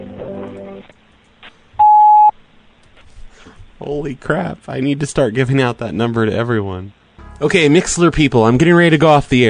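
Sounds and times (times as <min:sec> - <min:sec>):
answering machine electronic beep: 0:01.8 - 0:02.3
speech: 0:03.8 - 0:09.4.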